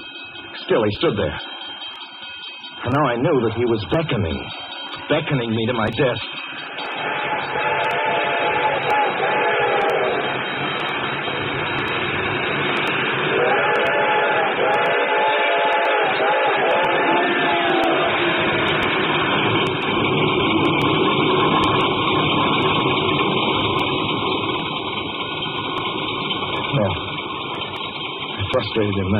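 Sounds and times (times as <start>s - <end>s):
approaching train rumbling: 0.0s - 29.1s
train bell clanging: 0.0s - 29.1s
speech: 0.7s - 1.6s, 2.8s - 6.4s, 28.8s - 29.1s
train whistle wailing: 6.8s - 19.8s.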